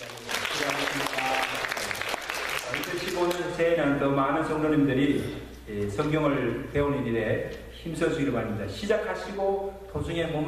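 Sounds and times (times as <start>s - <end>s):
church congregation applauding: 0.0s - 3.4s
speech: 3.2s - 10.4s.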